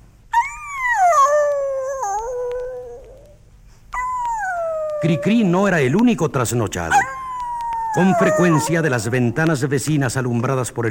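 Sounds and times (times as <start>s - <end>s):
dog howling plaintively at night: 0.3s - 3.4s, 4.0s - 5.8s, 6.9s - 9.1s
speech: 5.0s - 7.2s, 7.9s - 10.9s.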